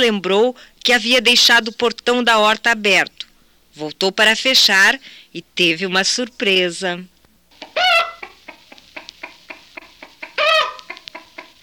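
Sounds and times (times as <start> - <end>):
speech: 0.0 - 7.1
chickens clucking while eating vegetables in a vegetable garden: 7.5 - 11.6.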